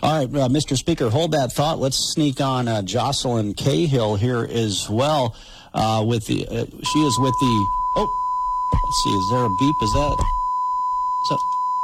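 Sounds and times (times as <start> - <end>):
speech: 0.2 - 10.4, 11.2 - 11.6
steady high-pitched electronic alert beep: 6.9 - 11.8.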